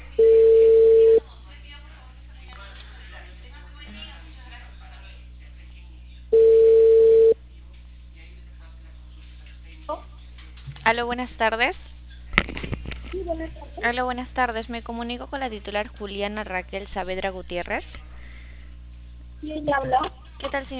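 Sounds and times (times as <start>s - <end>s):
telephone ringback tone on an outgoing call: 0.2s - 1.2s, 6.4s - 7.4s
speech: 10.9s - 11.9s, 13.3s - 18.0s, 19.4s - 20.7s.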